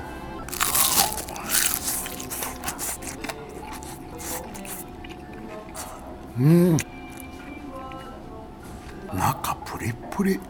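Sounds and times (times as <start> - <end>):
person biting into crispy shrimp tempura with crunchy batter: 0.5 - 4.8, 5.7 - 7.3
soft chewing of shrimp tempura: 0.5 - 7.3
speech: 6.4 - 6.9, 10.2 - 10.4.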